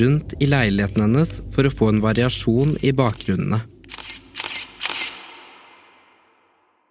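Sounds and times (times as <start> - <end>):
speech: 0.0 - 3.7
camera shutter clicking: 2.6 - 5.5.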